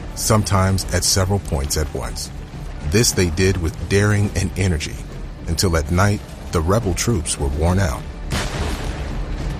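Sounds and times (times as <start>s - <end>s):
speech: 0.2s - 8.5s
heavy cannon fire from timberclad gunboats: 8.2s - 9.4s.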